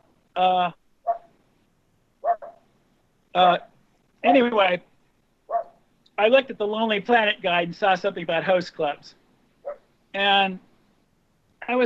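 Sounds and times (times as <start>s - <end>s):
speech: 0.4s - 0.8s, 3.4s - 4.9s, 6.2s - 9.2s, 10.1s - 10.7s, 11.7s - 11.8s
dog barking: 1.1s - 1.3s, 2.2s - 2.6s, 5.5s - 5.8s.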